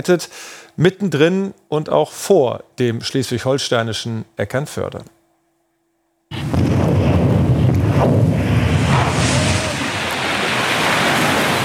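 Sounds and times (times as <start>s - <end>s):
speech: 0.0s - 5.2s
underwater explosion of 500 kg of explosives: 6.3s - 11.6s
sustained rumbling roar of churning, rushing water: 8.4s - 11.6s.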